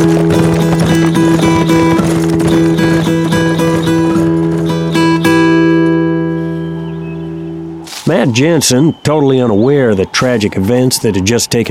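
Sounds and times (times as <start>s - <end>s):
hoofbeats of horses galloping: 0.0s - 6.3s, 8.1s - 11.6s
steady droning musical tone: 0.2s - 7.9s
speech: 8.2s - 11.6s.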